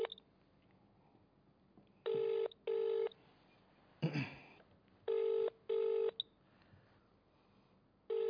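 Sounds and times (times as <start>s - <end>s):
phone ringback tone of an outgoing call: 2.1s - 3.1s, 5.1s - 6.2s.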